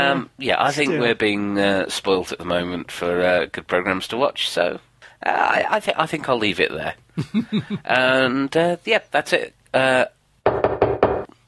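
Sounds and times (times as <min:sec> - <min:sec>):
speech: 0:00.0 - 0:10.2
knocking on a door: 0:10.4 - 0:11.3.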